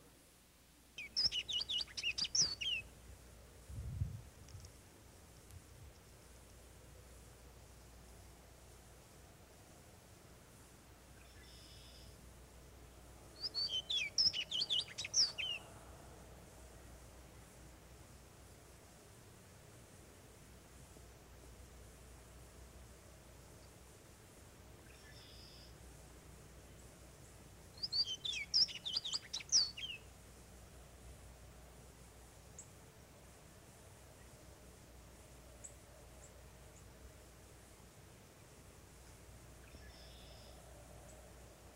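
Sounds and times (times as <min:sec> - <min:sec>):
soft steady outdoor hiss: 0:00.0 - 0:41.7
orchard oriole song: 0:01.0 - 0:02.9, 0:11.1 - 0:12.2, 0:13.3 - 0:15.8, 0:24.8 - 0:25.8, 0:26.7 - 0:30.1, 0:39.6 - 0:41.7.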